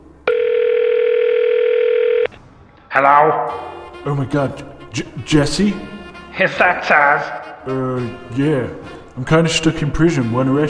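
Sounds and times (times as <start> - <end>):
telephone tone from a phone handset as a call is dialed: 0.3 - 2.3
speech: 2.9 - 10.6.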